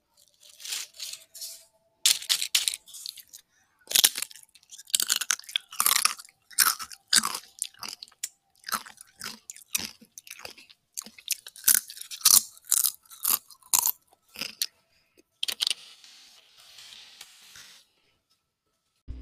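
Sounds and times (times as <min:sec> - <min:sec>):
crisp chewing and crunching: 0:00.0 - 0:14.8.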